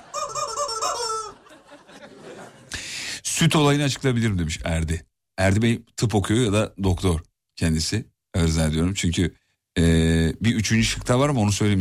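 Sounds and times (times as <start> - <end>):
squeaky rubber-duck toy squeaking: 0.0 - 1.4
laughter: 0.0 - 2.7
speech: 3.4 - 11.7.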